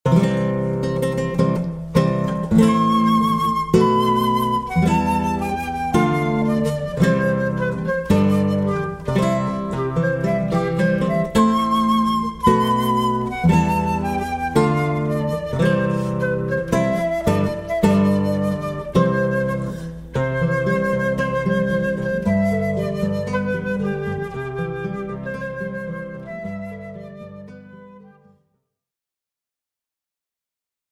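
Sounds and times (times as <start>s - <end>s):
classical guitar: 0.1s - 28.5s.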